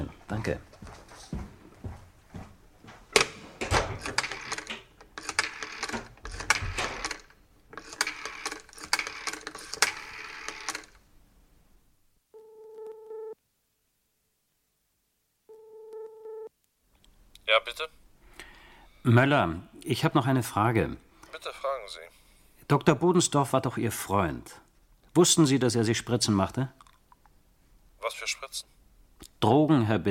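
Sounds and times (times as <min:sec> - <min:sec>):
speech: 0:00.3 - 0:00.7, 0:17.7 - 0:18.0, 0:19.0 - 0:21.0, 0:22.7 - 0:24.6, 0:25.2 - 0:26.8, 0:29.4 - 0:30.0
telephone being dialled: 0:04.0 - 0:11.0
buzzing telephone ring tones: 0:05.3 - 0:06.0, 0:07.8 - 0:11.0.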